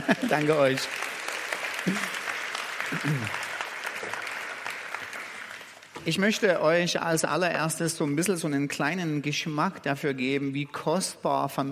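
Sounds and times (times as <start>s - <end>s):
laughter: 0.0s - 0.8s
speech: 0.0s - 1.0s, 1.8s - 2.2s, 3.0s - 3.4s, 6.0s - 11.7s
audience applause: 0.0s - 6.0s.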